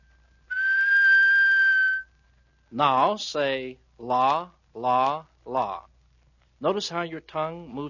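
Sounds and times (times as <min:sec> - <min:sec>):
steady mouth whistle on one clear pitch: 0:00.4 - 0:02.2
speech: 0:02.7 - 0:05.9, 0:06.6 - 0:07.8.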